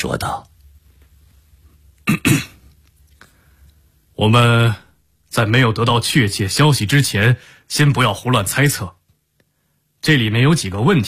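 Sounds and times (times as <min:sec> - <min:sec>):
speech: 0:00.0 - 0:00.5, 0:02.1 - 0:02.5, 0:04.2 - 0:09.0, 0:10.0 - 0:11.0
light cough: 0:02.0 - 0:02.7.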